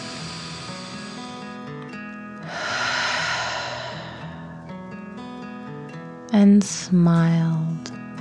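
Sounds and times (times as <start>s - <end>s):
deep calming breath in and out: 0.0s - 1.8s, 2.4s - 5.0s
speech: 6.3s - 8.0s.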